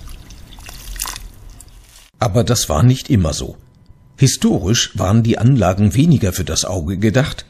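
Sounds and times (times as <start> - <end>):
water trickling and splashing while watering plants: 0.0 - 2.2
speech: 2.2 - 3.6, 4.2 - 7.4.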